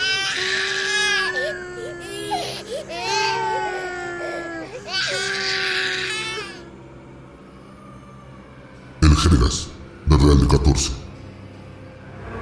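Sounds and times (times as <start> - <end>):
eerie childlike voices wailing in sobbing cries: 0.0 - 6.7
speech: 9.2 - 11.0.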